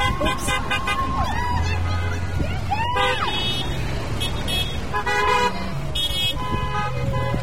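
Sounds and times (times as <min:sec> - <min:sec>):
honking car horns in a procession: 0:00.0 - 0:07.4
steady engine and traffic rumble of cars passing: 0:00.0 - 0:07.4.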